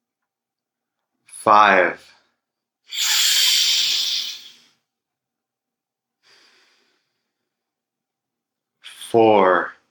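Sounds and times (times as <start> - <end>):
speech: 1.4 - 2.1, 9.1 - 9.8
deep belly breath inhaling and exhaling: 2.9 - 4.7, 6.2 - 7.6.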